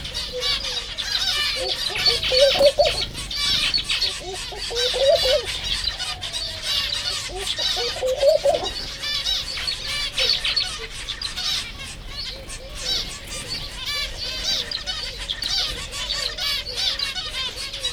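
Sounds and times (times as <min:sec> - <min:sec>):
many twittering birds of several kinds: 0:00.0 - 0:17.9
white-handed gibbon hooting in a zoo: 0:00.3 - 0:08.9
speech: 0:01.6 - 0:03.1.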